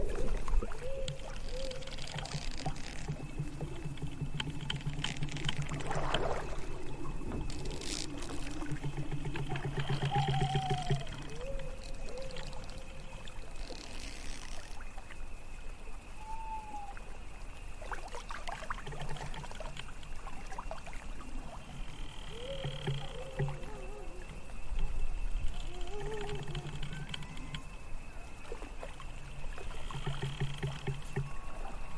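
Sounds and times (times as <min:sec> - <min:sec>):
water lapping against a rowing boat at night: 0:00.0 - 0:31.9
wooden creaks and squeaks of trees: 0:01.0 - 0:06.1, 0:06.7 - 0:12.8, 0:22.0 - 0:24.0, 0:24.6 - 0:27.8.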